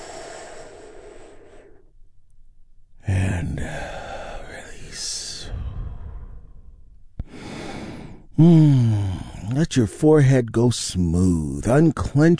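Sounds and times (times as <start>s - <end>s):
breathy exhale: 0.0s - 1.9s, 5.2s - 9.4s
big deep breath during a guided relaxation: 0.0s - 2.0s, 3.7s - 9.5s
speech: 8.4s - 8.7s, 9.6s - 12.3s.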